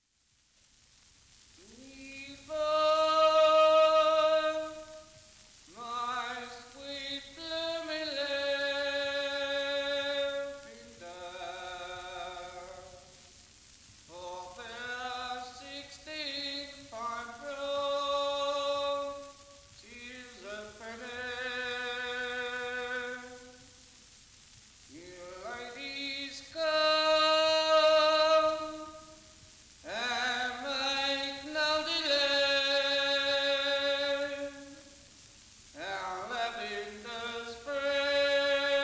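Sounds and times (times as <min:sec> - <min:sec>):
lavender seller singing: 0:01.6 - 0:13.1, 0:14.1 - 0:23.6, 0:24.9 - 0:29.0, 0:29.8 - 0:34.8, 0:35.8 - 0:38.8.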